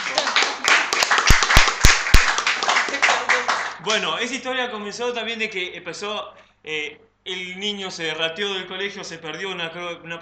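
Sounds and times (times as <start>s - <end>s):
audience applauding for a couple being introduced: 0.0s - 4.0s
speech: 3.9s - 10.2s.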